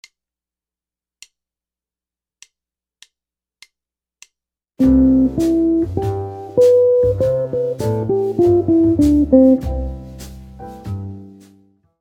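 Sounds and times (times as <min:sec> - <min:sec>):
bebop jazz guitar: 0:04.8 - 0:11.4.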